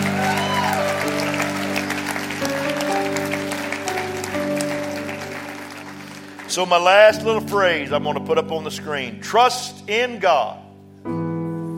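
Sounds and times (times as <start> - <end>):
congregation clapping hands: 0.0 - 7.6
speech: 6.6 - 11.2.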